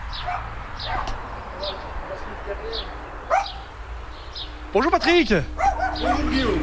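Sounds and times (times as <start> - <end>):
birds chirping: 0.0 - 6.6
small dog barking: 0.2 - 1.2, 3.3 - 3.7, 5.6 - 6.5
speech: 0.2 - 3.7, 4.4 - 6.6.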